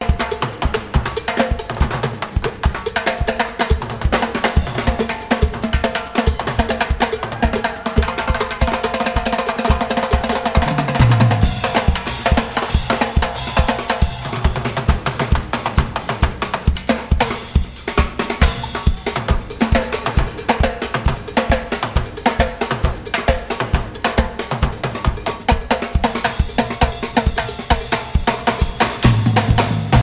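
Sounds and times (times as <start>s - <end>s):
live percussion music: 0.0s - 30.0s.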